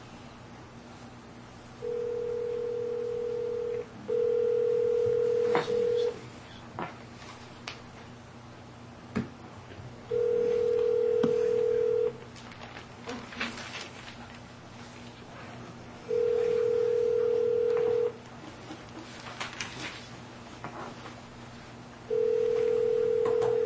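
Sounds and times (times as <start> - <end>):
telephone line tone: 1.8 - 6.2, 10.1 - 12.2, 16.1 - 18.2, 22.1 - 23.6.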